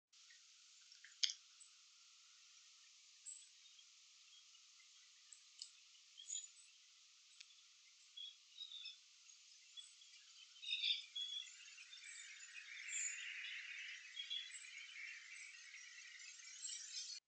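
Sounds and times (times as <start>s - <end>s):
green-throated carib Eulampis holosericeus calling: 5.2s - 17.0s.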